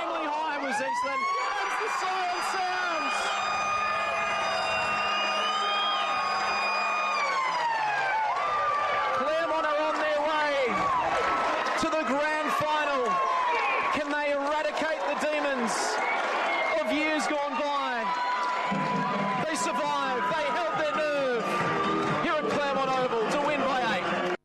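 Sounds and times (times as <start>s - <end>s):
stadium crowd roaring: 0.0s - 24.4s
football ground end-of-match siren blaring: 0.4s - 9.3s
speech: 0.9s - 3.2s.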